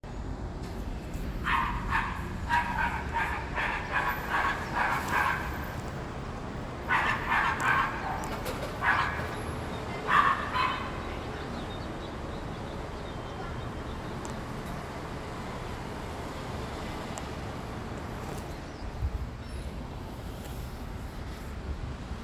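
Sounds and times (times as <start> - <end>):
road traffic rumble: 0.0 - 22.2
dog barking: 1.4 - 5.5, 6.9 - 9.4, 10.0 - 11.0.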